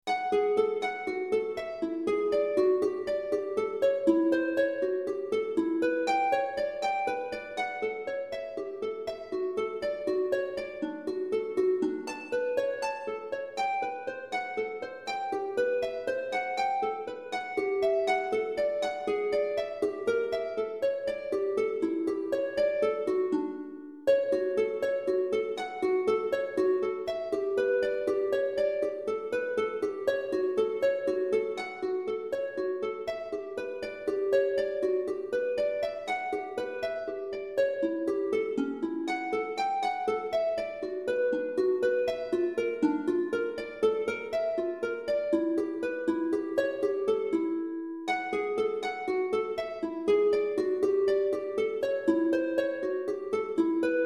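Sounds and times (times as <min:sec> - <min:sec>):
lute: 0:00.0 - 0:54.0.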